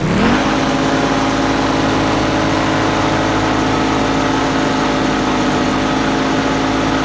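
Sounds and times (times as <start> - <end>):
go-kart boost: 0.0 - 7.0.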